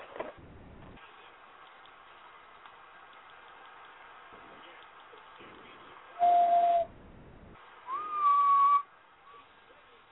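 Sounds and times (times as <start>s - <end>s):
high-pitched human whistling: 6.2s - 6.9s, 7.9s - 8.9s.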